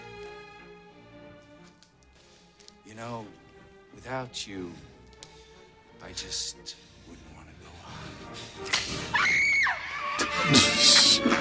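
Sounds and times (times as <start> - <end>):
speech: 3.0 - 3.4, 4.0 - 4.9, 6.0 - 7.3
woman screaming in a film clip: 9.1 - 10.6.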